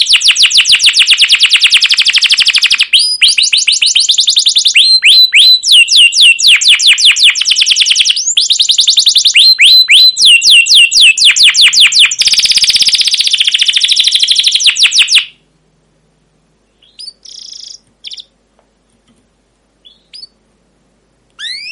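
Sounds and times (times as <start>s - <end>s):
caged canary song: 0.0s - 15.4s, 16.6s - 18.4s, 19.8s - 20.5s, 21.3s - 21.7s.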